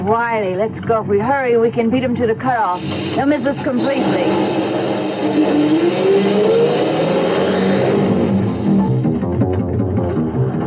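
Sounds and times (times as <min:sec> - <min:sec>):
speech: 0:00.0 - 0:06.8
loud truck engine revving and accelerating: 0:02.7 - 0:10.6.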